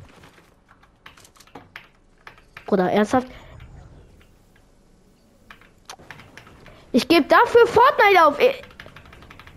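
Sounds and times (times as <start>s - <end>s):
low hum: 0.0s - 9.5s
computer keyboard E key pressed during a video game: 0.3s - 2.8s, 5.5s - 6.8s, 8.6s - 9.5s
speech: 2.7s - 3.4s, 7.0s - 8.7s.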